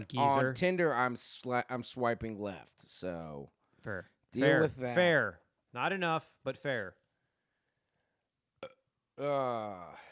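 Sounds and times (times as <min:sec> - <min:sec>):
speech: 0:00.0 - 0:07.0, 0:09.2 - 0:10.1
person letting out a low voiced burp: 0:08.6 - 0:10.0.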